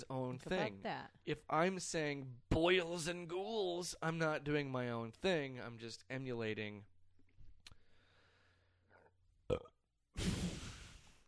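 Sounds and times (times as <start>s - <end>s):
speech: 0.0s - 6.9s, 9.5s - 10.6s
loud rasping burp: 9.5s - 9.9s.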